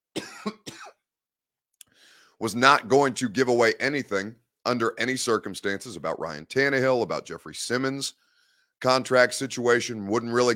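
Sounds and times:
person coughing: 0.1 - 1.0
speech: 2.4 - 10.5.

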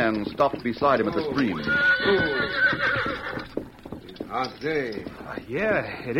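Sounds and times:
speech: 0.0 - 3.1, 4.3 - 6.1
horse whinnying: 1.0 - 3.8.

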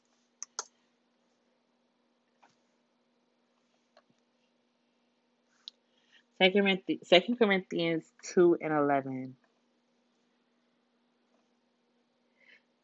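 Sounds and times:
computer keyboard clicks: 0.4 - 0.8
speech: 6.4 - 9.4.

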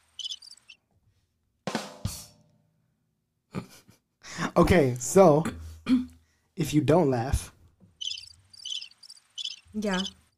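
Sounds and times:
cricket-like chirps: 0.0 - 0.8, 8.0 - 10.1
speech: 4.6 - 7.5, 9.8 - 10.2.

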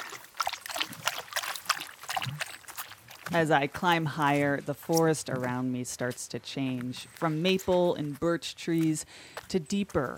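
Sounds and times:
small brook babbling and trickling: 0.0 - 3.4
speech: 3.3 - 10.1.

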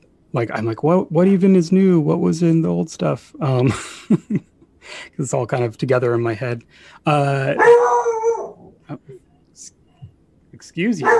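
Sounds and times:
speech: 0.3 - 8.0, 8.9 - 9.8, 10.6 - 11.1
dog howling outside the house: 7.6 - 8.7.

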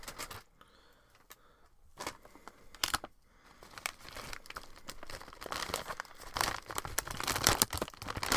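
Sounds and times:
chip bag crinkling while handled: 2.0 - 8.3.

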